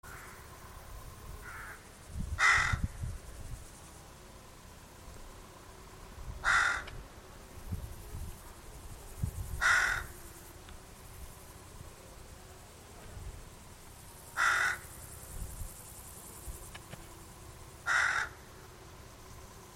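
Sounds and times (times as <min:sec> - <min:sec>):
hoarse grating bird caws: 0:00.1 - 0:00.4, 0:01.4 - 0:01.8, 0:02.4 - 0:02.9, 0:06.4 - 0:07.0, 0:09.6 - 0:10.2, 0:14.4 - 0:14.9, 0:17.8 - 0:18.4.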